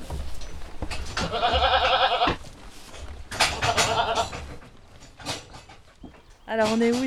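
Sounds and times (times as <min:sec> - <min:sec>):
Poitevine goats bleating on a goat farm: 0:01.2 - 0:02.4, 0:03.5 - 0:04.4
speech: 0:06.6 - 0:07.0.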